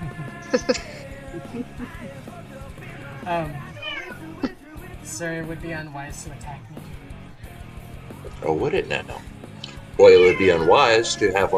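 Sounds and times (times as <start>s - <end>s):
laughter: 0.0s - 3.4s, 4.1s - 4.8s
speech: 0.5s - 2.6s, 3.2s - 3.7s, 5.1s - 6.9s, 8.2s - 9.4s, 10.0s - 11.5s
cat meowing: 3.4s - 4.6s, 10.0s - 11.5s.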